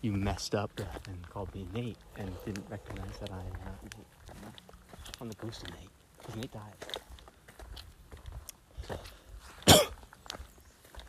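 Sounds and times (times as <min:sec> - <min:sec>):
speech: 0:00.0 - 0:07.1
loud cough: 0:09.6 - 0:10.0.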